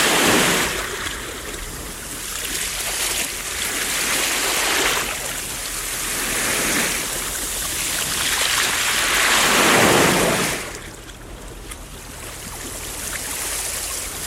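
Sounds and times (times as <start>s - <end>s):
ocean waves surging and washing: 0.0s - 14.2s.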